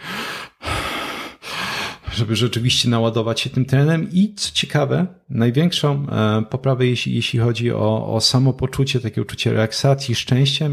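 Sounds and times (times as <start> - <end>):
rapid forceful hyperventilation breathing: 0.0 - 2.2
speech: 2.2 - 10.7.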